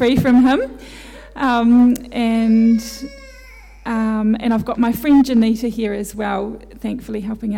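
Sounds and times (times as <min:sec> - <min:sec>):
speech: 0:00.0 - 0:03.2, 0:03.9 - 0:07.5
baby's short breathy huff: 0:00.8 - 0:01.4
8-month-old baby girl fussing, half cry and half babble: 0:02.4 - 0:04.3.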